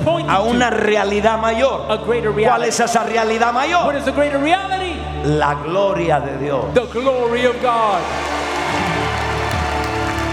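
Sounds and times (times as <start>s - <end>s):
speech: 0.1s - 8.3s
audience applause: 7.4s - 10.3s.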